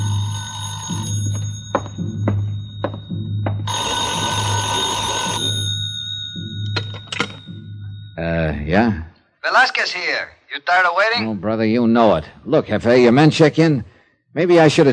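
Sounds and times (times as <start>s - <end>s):
old-style telephone bell ringing in a small side-street hotel: 0.0s - 8.2s
speech: 9.6s - 14.9s.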